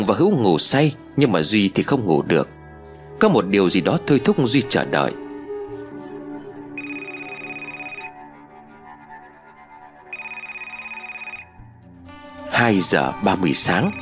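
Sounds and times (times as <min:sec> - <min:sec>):
speech: 0:00.0 - 0:02.6, 0:03.2 - 0:05.2, 0:12.6 - 0:14.0
steady melodic musical background: 0:03.6 - 0:08.4, 0:10.1 - 0:14.0
mobile phone ringtone with bright repeating tones: 0:06.8 - 0:08.2, 0:10.1 - 0:11.6, 0:13.5 - 0:14.0.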